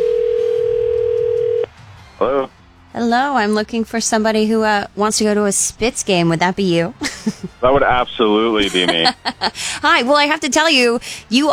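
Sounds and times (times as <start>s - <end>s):
steady telephone dial tone: 0.0s - 1.7s
speech: 2.2s - 11.5s
laughter: 6.9s - 10.1s.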